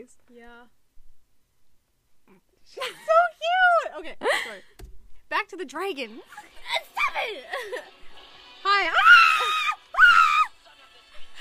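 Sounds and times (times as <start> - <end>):
speech: 0.0 - 0.8, 2.3 - 8.0, 8.6 - 9.7
person screaming, high-pitched and shrill: 9.0 - 10.5.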